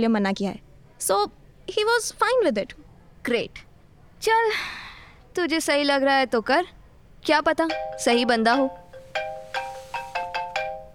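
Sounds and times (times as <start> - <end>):
speech: 0.0 - 4.8, 5.4 - 8.8
mobile phone ringtone for an incoming call: 7.7 - 10.9.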